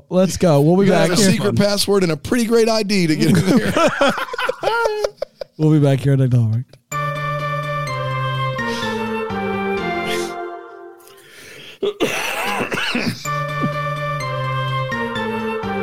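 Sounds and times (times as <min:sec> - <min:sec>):
speech: 0:00.1 - 0:06.8
upbeat music: 0:00.6 - 0:01.6, 0:06.9 - 0:11.1, 0:13.2 - 0:15.8
laughter: 0:00.9 - 0:01.6, 0:03.1 - 0:05.6
person coughing loudly: 0:11.8 - 0:13.3.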